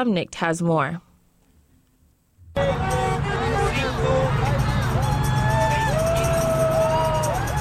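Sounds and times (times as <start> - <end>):
speech: 0.0 - 1.1
traffic on the 110 freeway in South Los Angeles passing below an overpass: 2.4 - 7.6
rising-and-falling whistle-like tones: 2.6 - 7.6
voices from a crowd of activists: 2.6 - 7.6.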